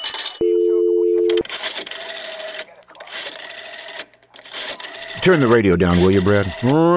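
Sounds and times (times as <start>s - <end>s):
wall payphone rotary dialing whirring and clicking: 0.4s - 6.9s
speech: 5.2s - 6.9s.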